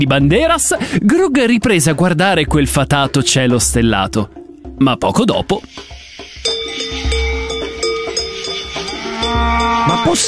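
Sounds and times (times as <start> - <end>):
speech: 0.0 - 5.8, 10.0 - 10.2
cowbells of a passing cow herd clanking: 5.5 - 10.2.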